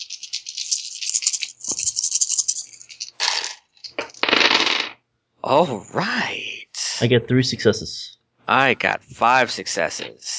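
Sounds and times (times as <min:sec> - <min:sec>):
six dice rolled during a tabletop role-playing game: 0:00.0 - 0:05.0
speech: 0:05.4 - 0:10.3.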